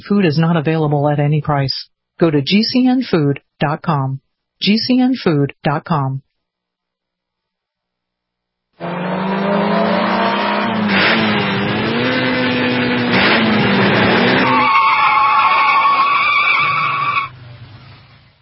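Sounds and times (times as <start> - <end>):
speech: 0.0 - 6.2, 8.8 - 9.0
drag racing car engine revving hard: 8.8 - 14.9
drag racing car tires screeching in a long skid: 8.8 - 18.4.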